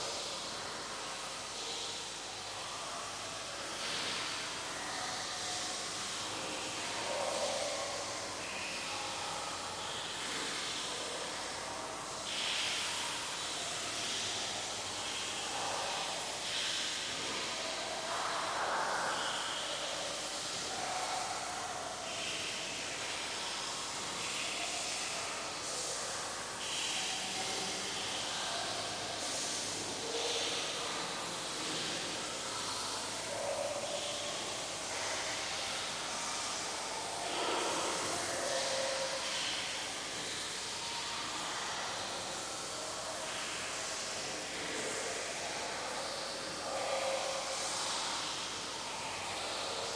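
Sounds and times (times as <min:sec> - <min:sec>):
cavern ambience at night: 0:00.0 - 0:49.9.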